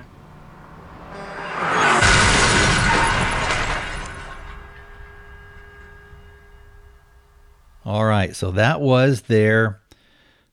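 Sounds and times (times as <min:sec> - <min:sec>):
shattering breaking debris: 0:00.0 - 0:08.2
bus crash: 0:00.0 - 0:08.7
speech: 0:08.3 - 0:09.8.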